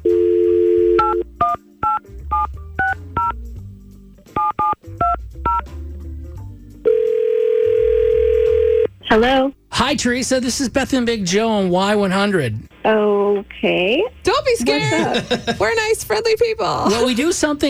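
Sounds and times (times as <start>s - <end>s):
telephone dial tone: 0.0s - 1.3s, 6.8s - 8.9s
touch-tone telephone dialing beeps: 0.2s - 3.4s, 4.4s - 5.6s
speech: 9.1s - 17.6s
laughter: 14.6s - 16.0s, 16.8s - 17.6s.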